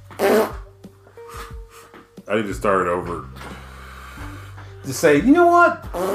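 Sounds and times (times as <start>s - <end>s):
fart: 0.1s - 0.7s, 5.8s - 6.1s
speech: 2.3s - 3.5s, 4.9s - 6.1s.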